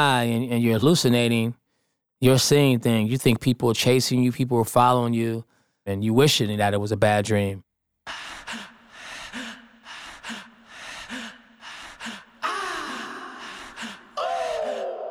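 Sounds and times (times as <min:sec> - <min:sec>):
speech: 0:00.0 - 0:01.6, 0:02.2 - 0:08.7
rapid frightened panting in a song: 0:08.1 - 0:14.8.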